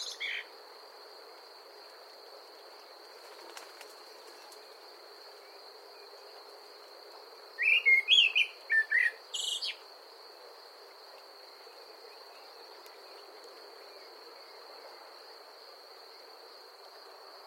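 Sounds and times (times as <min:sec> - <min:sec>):
steady hiss: 0:00.0 - 0:17.4
common blackbird singing fluty notes: 0:07.6 - 0:09.8.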